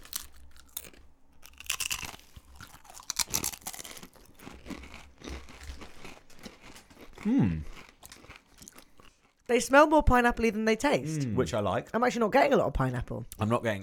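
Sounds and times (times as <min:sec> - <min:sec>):
crunching and chewing of a crunchy snack: 0:00.0 - 0:09.5
speech: 0:07.2 - 0:07.7, 0:09.5 - 0:13.8.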